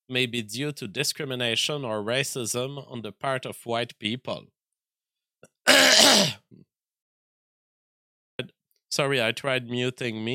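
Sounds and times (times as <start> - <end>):
speech: 0.1 - 4.6, 5.7 - 6.7, 8.4 - 10.3
single harsh raspy cough: 5.7 - 6.4.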